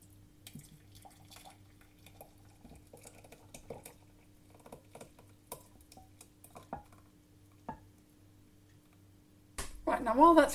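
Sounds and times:
thick sauce being poured into a jug: 0.0s - 7.8s
low steady kitchen hum: 0.0s - 10.5s
speech: 9.9s - 10.5s.

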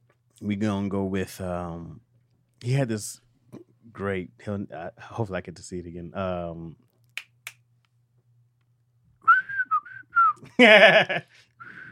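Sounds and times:
speech: 0.4s - 6.8s, 10.4s - 11.5s
finger snaps: 7.0s - 8.0s
person whistling a bouncy TV theme melody: 9.2s - 10.4s, 11.6s - 11.8s.

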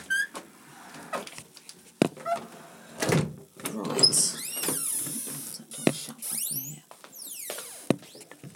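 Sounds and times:
door swinging open with squeaks and whines: 0.0s - 0.4s, 3.8s - 8.3s.

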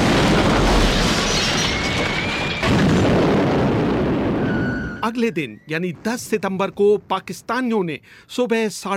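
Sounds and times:
bomb explosions from an air raid: 0.0s - 5.2s
speech: 5.1s - 8.9s.

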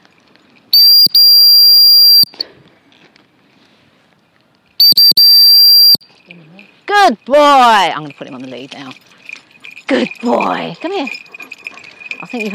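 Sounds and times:
shrill whistle blown to call a dog: 0.8s - 2.3s, 4.8s - 6.0s
speech: 6.9s - 9.2s, 9.9s - 11.2s, 12.2s - 12.5s.

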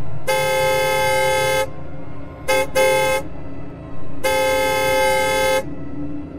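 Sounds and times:
car horn honking: 0.2s - 1.7s, 2.4s - 3.3s, 4.2s - 5.7s.

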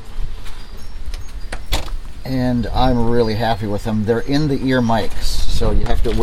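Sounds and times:
gusting wind roaring outdoors on a cold day: 0.0s - 6.2s
door clunking and rattling as it is wrenched open outdoors: 1.1s - 2.1s
speech: 2.2s - 6.2s.

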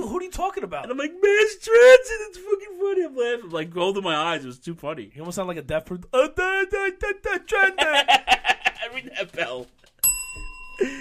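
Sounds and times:
speech: 0.4s - 9.8s, 10.8s - 10.9s
laughter: 7.5s - 9.7s
bell struck once: 10.0s - 10.9s.

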